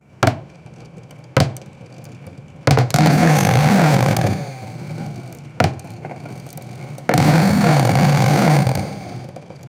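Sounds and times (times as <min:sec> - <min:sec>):
wood carving in woodworking: 0:02.7 - 0:09.4.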